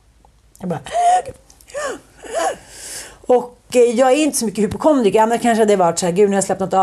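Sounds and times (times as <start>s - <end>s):
speech: 0.6s - 6.8s
person mimicking wheezing breaths of a severe allergic reaction: 0.9s - 3.3s.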